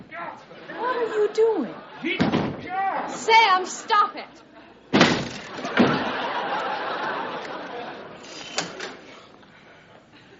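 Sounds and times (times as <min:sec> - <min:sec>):
speech: 0:00.4 - 0:04.5
sharp thud: 0:04.9 - 0:06.0
door being broken down with splintering crashes: 0:05.0 - 0:06.1
laughter: 0:05.5 - 0:08.6.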